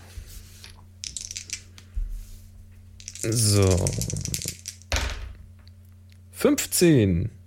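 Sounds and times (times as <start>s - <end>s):
low steady hum: 0.0s - 7.4s
dice tumbling across a dice mat: 0.6s - 2.0s, 3.0s - 5.3s
speech: 3.2s - 4.4s, 6.4s - 7.4s.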